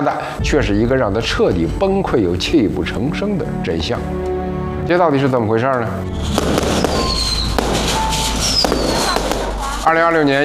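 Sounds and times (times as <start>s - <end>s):
speech: 0.0s - 6.9s, 9.8s - 10.4s
faint whistling tones: 6.2s - 9.2s
firecrackers crackling in a village: 6.2s - 10.4s.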